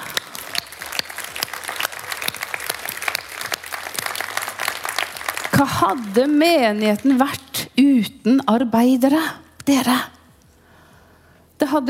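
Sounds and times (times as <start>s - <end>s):
audience applauding: 0.0s - 7.4s
speech: 5.6s - 10.1s, 11.7s - 11.8s.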